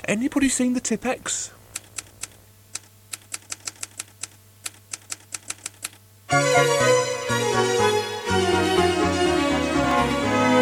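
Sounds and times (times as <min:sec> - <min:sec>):
speech: 0:00.1 - 0:01.6
typewriter keys clacking: 0:01.8 - 0:06.0
low sustained drone from an organ: 0:06.3 - 0:10.6.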